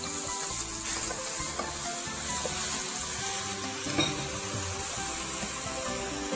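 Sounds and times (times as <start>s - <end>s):
home-style tofu sizzling as it pan-fries: 0.0s - 6.3s
utensil clinking: 3.9s - 4.5s.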